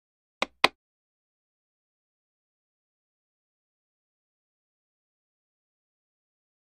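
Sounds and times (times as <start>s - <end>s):
deck of cards tapping: 0.4s - 0.8s.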